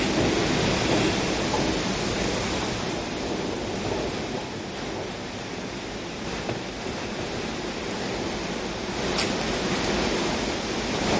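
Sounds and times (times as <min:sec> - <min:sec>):
wind rushing through leafy branches: 0:00.0 - 0:11.1.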